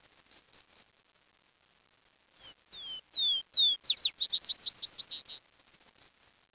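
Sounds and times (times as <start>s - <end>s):
bird singing whistled notes and a bright trill: 2.4s - 5.4s.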